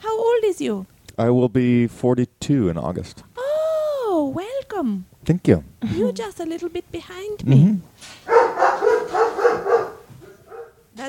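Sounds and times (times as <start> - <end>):
speech: 0.6 - 3.3, 4.3 - 9.7
dog barking sharply and rapidly: 8.2 - 10.9.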